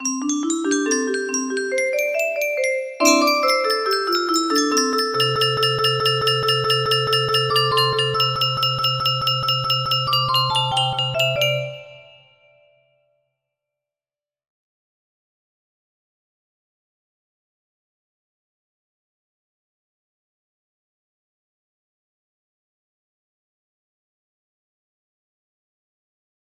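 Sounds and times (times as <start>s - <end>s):
pentatonic scale music box melody: 0.0s - 12.6s.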